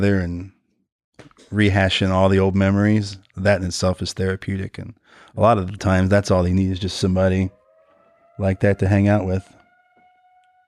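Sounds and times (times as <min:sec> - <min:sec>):
speech: 0:00.0 - 0:00.6, 0:01.5 - 0:07.6, 0:08.4 - 0:09.6
tornado siren wailing outside: 0:06.8 - 0:10.6.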